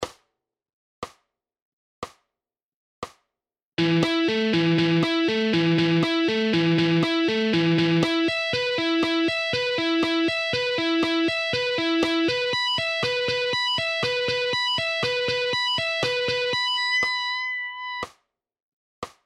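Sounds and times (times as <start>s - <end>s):
half speed pentatonic scale guitar licks: 3.8s - 18.0s.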